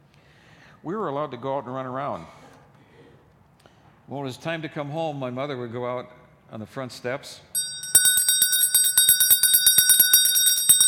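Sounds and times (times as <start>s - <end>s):
speech: 0.8s - 2.4s, 4.1s - 7.5s
old cow bell from a farm rung by hand: 7.6s - 10.8s.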